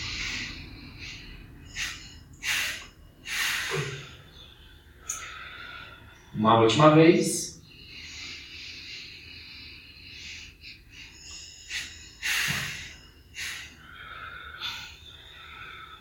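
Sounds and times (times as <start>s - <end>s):
breath exhaled through the nose: 0.0s - 4.4s, 8.0s - 15.9s
speech: 6.4s - 7.4s.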